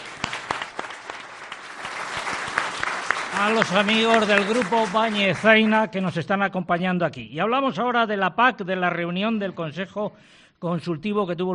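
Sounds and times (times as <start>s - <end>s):
audience applause for a music group at a live event: 0.0s - 5.8s
speech: 3.4s - 11.5s.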